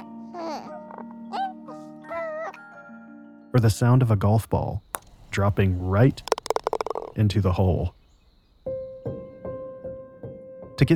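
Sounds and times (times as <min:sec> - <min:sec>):
newborn baby cooing and babbling: 0:00.0 - 0:02.8
speech: 0:03.5 - 0:06.3, 0:07.2 - 0:08.0, 0:10.8 - 0:10.9.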